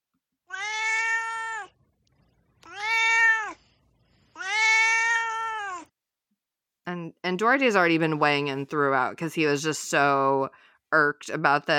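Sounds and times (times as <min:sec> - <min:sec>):
male cat meowing: 0:00.5 - 0:01.8, 0:02.6 - 0:03.6, 0:04.3 - 0:05.9
speech: 0:07.2 - 0:11.7.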